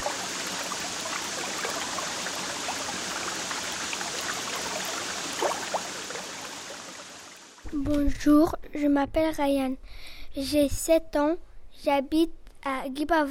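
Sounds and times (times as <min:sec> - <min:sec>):
river water flowing: 0:00.0 - 0:07.6
speech: 0:07.7 - 0:13.2.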